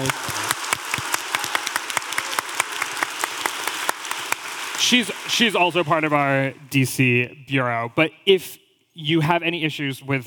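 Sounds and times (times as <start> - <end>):
crowd applauding: 0.0 - 6.7
speech: 4.9 - 10.2.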